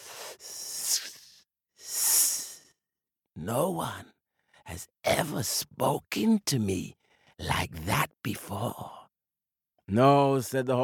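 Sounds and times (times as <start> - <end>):
snake hissing: 0.0 - 2.7
speech: 3.4 - 9.0, 9.9 - 10.8.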